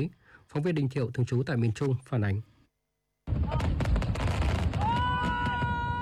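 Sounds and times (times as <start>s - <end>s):
speech: 0.0s - 2.5s, 3.5s - 3.7s
fireworks crackling and popping: 3.3s - 6.0s.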